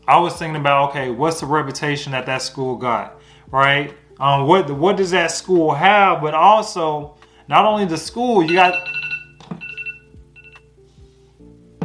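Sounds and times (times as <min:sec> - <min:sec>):
speech: 0:00.1 - 0:09.0
kitchen-style timer beeping: 0:08.5 - 0:10.7.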